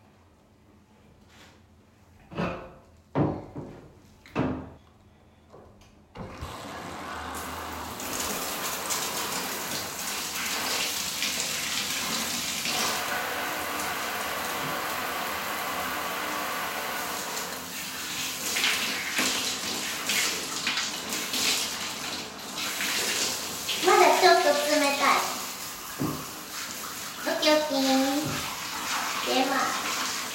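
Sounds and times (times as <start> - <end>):
shower water spraying for rinsing: 6.4 - 30.3.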